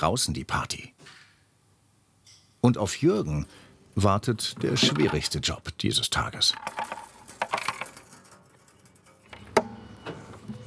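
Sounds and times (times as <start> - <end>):
speech: 0.0 - 1.2, 2.6 - 7.0
loose coins rattling while being shaken and fished out: 6.2 - 9.6.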